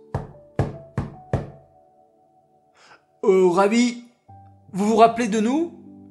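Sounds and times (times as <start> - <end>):
firm knocks on a wooden door: 0.0 - 1.6
speech: 3.2 - 4.0, 4.7 - 5.8.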